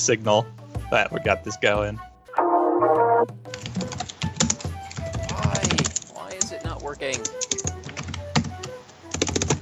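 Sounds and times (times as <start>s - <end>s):
speech: 0.0s - 2.1s, 2.8s - 4.0s, 6.9s - 7.7s
rapid typing on a computer keyboard: 2.7s - 9.6s.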